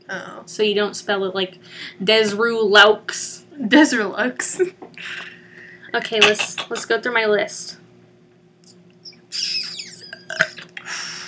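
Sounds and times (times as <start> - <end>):
speech: 0.1 - 5.3, 5.9 - 7.8
gurgling burp: 10.2 - 10.7.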